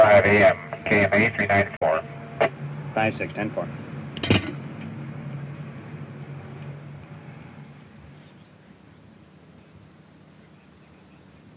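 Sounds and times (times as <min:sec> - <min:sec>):
car engine idling: 0:00.0 - 0:10.5
speech: 0:00.3 - 0:03.8.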